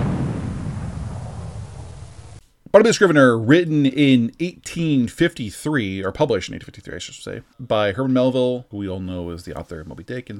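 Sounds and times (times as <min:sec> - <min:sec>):
cannon blast: 0:00.0 - 0:02.4
speech: 0:02.8 - 0:10.3.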